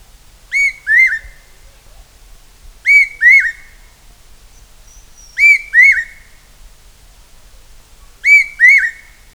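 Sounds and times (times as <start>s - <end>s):
Large hawk-cuckoo paired whistled call in tropical Asia: 0.0s - 1.7s, 2.8s - 6.5s, 8.0s - 9.3s
faint low hum: 0.0s - 9.3s.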